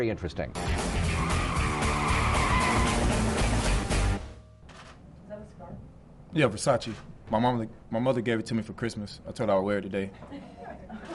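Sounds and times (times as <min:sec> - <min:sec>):
speech: 0:00.0 - 0:01.5, 0:06.3 - 0:11.1
car tires skidding: 0:00.9 - 0:03.8
car brakes screeching: 0:01.1 - 0:03.2
laughter: 0:10.2 - 0:11.1.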